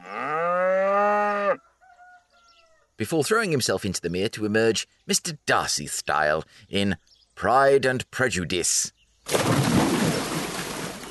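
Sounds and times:
cow mooing: 0:00.0 - 0:01.6
speech: 0:03.0 - 0:09.6.

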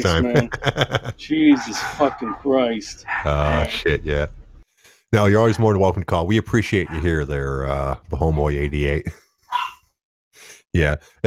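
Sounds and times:
laughter: 0:00.0 - 0:02.4, 0:03.3 - 0:04.3
speech: 0:00.0 - 0:04.4, 0:05.1 - 0:09.7, 0:10.8 - 0:11.2
dog barking: 0:01.5 - 0:03.6, 0:09.5 - 0:09.8.

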